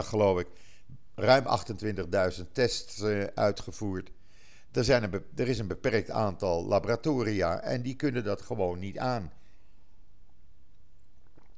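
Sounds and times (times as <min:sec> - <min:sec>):
speech: 0:00.0 - 0:09.4
low hum: 0:00.0 - 0:11.5
sipping and swallowing water: 0:09.4 - 0:11.5
gulp: 0:11.1 - 0:11.5.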